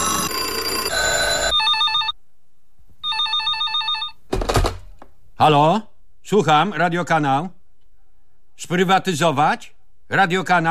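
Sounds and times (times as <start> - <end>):
telephone ringing in a radio studio: 0.0 - 2.2, 3.0 - 4.3
speech: 5.4 - 7.6, 8.6 - 10.6.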